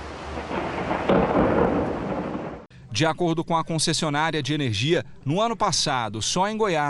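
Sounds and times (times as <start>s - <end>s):
steady rain in Goiânia Brazil: 0.0s - 2.7s
thunder crack after a lightning strike in Goiânia Brazil: 0.2s - 2.7s
speech: 3.0s - 6.8s.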